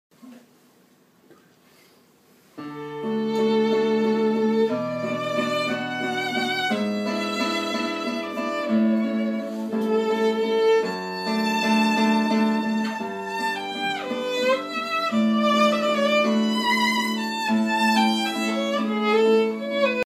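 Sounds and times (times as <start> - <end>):
music: 2.6 - 20.0.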